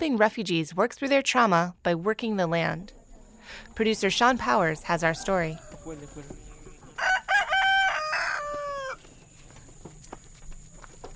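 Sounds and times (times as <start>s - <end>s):
speech: 0.0s - 6.4s
chickens clucking at a community garden: 2.8s - 11.1s
rooster crowing at a community garden: 5.0s - 9.1s.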